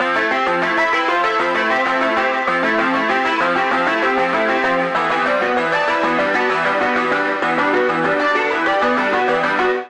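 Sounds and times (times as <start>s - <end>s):
bouncy tonal accompaniment music in C major: 0.0s - 9.8s.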